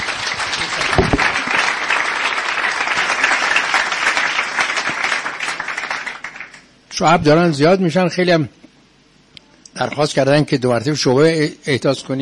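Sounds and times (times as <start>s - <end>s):
audience applause: 0.0s - 6.7s
speech: 7.0s - 8.6s, 9.8s - 12.2s.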